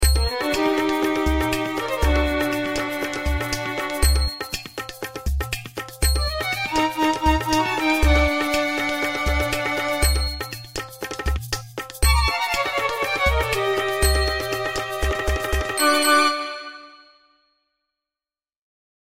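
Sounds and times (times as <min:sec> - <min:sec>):
violin in Eastern tribal music: 0:00.0 - 0:04.6, 0:06.1 - 0:10.7, 0:12.0 - 0:17.1
shaker in Eastern tribal music: 0:00.0 - 0:16.3
udu drum in Eastern tribal music: 0:00.0 - 0:16.4
tabla in Eastern tribal music: 0:00.0 - 0:16.7.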